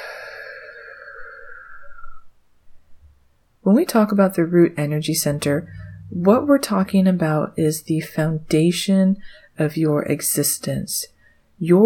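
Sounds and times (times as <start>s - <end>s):
slow deep breath in through the nose and out through the mouth: 0.0s - 2.4s, 5.7s - 6.1s, 9.2s - 9.6s
speech: 3.7s - 11.8s.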